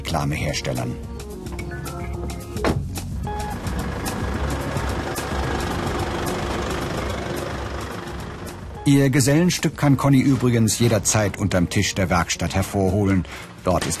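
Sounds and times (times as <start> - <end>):
speech: 0.1 - 1.1, 8.8 - 13.9
heavy truck engine idling in traffic: 1.3 - 9.5
busy street traffic: 1.4 - 9.0.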